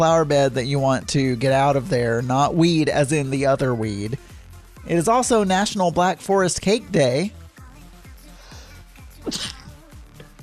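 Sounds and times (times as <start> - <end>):
speech: 0.0 - 4.3, 4.9 - 7.4, 9.2 - 9.6
person sneezing: 9.2 - 9.7.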